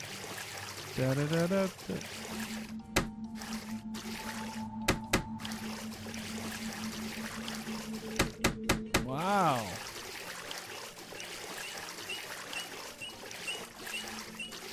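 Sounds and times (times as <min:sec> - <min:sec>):
sea water washing in video game ambience: 0:00.0 - 0:08.5, 0:09.1 - 0:14.7
speech: 0:01.0 - 0:02.5
person exclaiming: 0:09.0 - 0:09.8.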